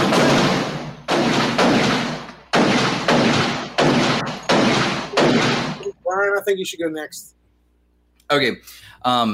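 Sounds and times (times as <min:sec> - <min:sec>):
loud booming gunshot sound effects with decay: 0:00.0 - 0:05.9
speech: 0:06.5 - 0:07.4, 0:08.3 - 0:09.3.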